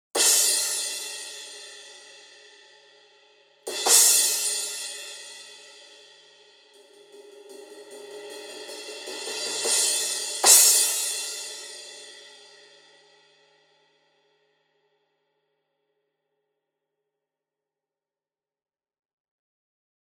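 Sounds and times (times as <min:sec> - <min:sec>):
custom 16-inch crash cymbal: 0:00.2 - 0:13.7.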